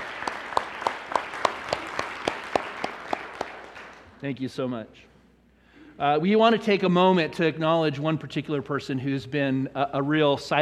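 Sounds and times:
audience applauding: 0:00.0 - 0:04.2
sharp evenly spaced claps: 0:00.0 - 0:04.2
speech: 0:04.2 - 0:05.1, 0:06.0 - 0:10.6.

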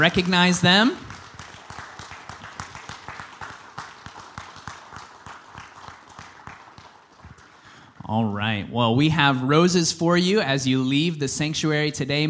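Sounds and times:
speech: 0:00.0 - 0:01.0, 0:08.1 - 0:12.2
large church audience applauding: 0:00.0 - 0:08.0.

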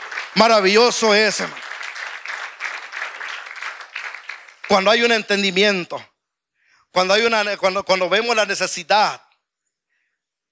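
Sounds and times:
crowd applauding: 0:00.0 - 0:05.5
speech: 0:00.4 - 0:01.7, 0:04.7 - 0:06.1, 0:06.9 - 0:09.2.

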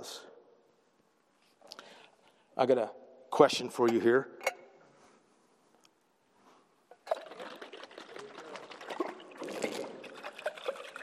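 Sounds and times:
speech: 0:02.6 - 0:04.5
water pouring out of a jar: 0:06.9 - 0:11.0.

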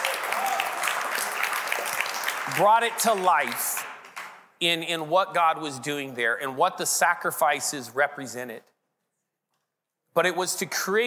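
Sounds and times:
audience clapping and cheering: 0:00.0 - 0:04.6
speech: 0:02.5 - 0:03.9, 0:04.6 - 0:08.7, 0:10.2 - 0:11.0.

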